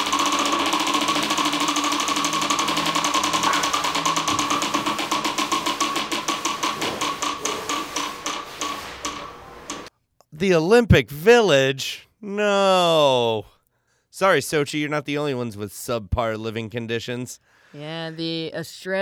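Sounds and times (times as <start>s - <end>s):
prize wheel pointer rattling against the pegs: 0.0s - 9.9s
speech: 10.4s - 13.5s, 14.2s - 19.0s.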